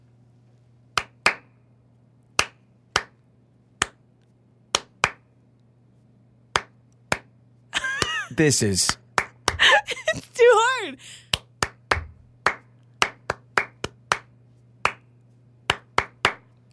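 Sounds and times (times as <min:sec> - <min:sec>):
hands clapping the rhythm of a song: 0:00.9 - 0:01.6, 0:02.3 - 0:03.2, 0:03.8 - 0:04.0, 0:04.7 - 0:05.3, 0:06.5 - 0:10.0, 0:11.3 - 0:16.6
laughter: 0:07.8 - 0:08.4, 0:09.6 - 0:10.4
speech: 0:08.3 - 0:09.0.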